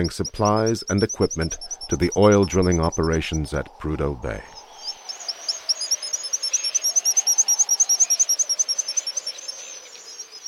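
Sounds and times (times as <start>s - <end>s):
black guillemot whistled calls on Cooper Island in the Arctic Ocean: 0.0s - 3.6s, 4.3s - 10.4s
speech: 0.0s - 4.6s
low droning background: 0.0s - 8.0s.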